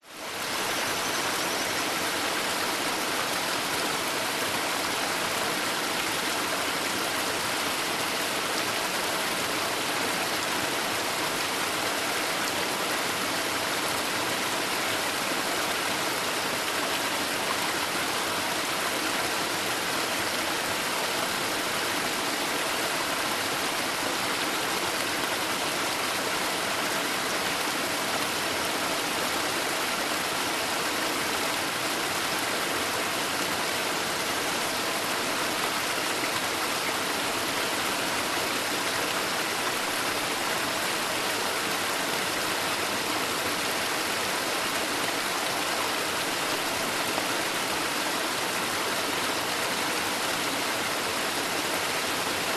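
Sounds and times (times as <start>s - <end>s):
small multi-step forest creek waterfall flowing through tree debris: 0.0s - 52.5s.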